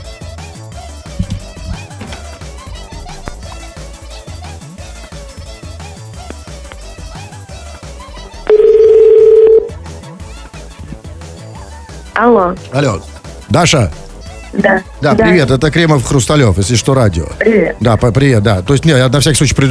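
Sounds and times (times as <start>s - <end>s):
continuous music: 0.0s - 19.6s
telephone keypad tone from dialing a phone number: 8.5s - 9.7s
speech: 12.2s - 14.0s, 14.6s - 19.6s.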